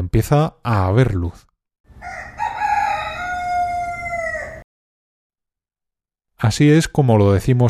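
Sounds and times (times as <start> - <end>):
speech: 0.1 - 2.2, 6.4 - 7.6
rooster crowing: 2.0 - 4.6.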